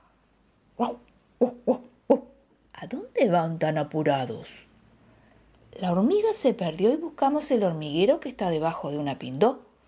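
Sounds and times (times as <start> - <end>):
speech: 0.8 - 1.0, 3.2 - 4.7, 5.8 - 9.6
dog yelping barks: 0.8 - 2.3.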